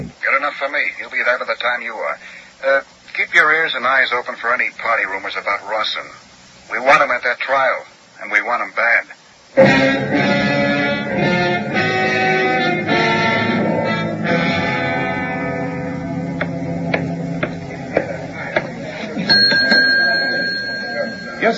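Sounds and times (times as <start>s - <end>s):
speech: 0.0s - 10.5s
music: 9.6s - 21.5s
murmur of voices: 16.5s - 21.5s
bell ringing: 19.2s - 21.5s.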